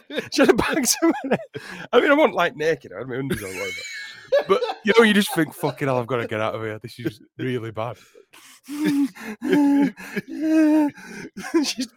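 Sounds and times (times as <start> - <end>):
laughter: 0.0 - 1.8, 3.3 - 7.2, 8.7 - 11.9
speech: 0.1 - 11.9
man imitating heavy raspy nasal breathing: 8.0 - 11.9.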